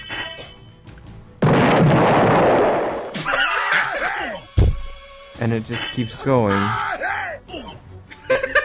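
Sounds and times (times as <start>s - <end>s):
explosion sound effect: 1.4s - 3.2s
laughter: 3.2s - 4.4s, 8.1s - 8.6s
speech: 5.4s - 6.9s.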